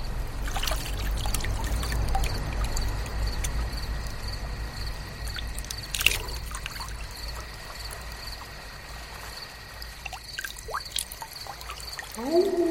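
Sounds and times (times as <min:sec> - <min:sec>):
water poured to wash hands and face: 0:00.3 - 0:12.5
brief splashy bursts: 0:00.4 - 0:03.6, 0:05.2 - 0:12.6.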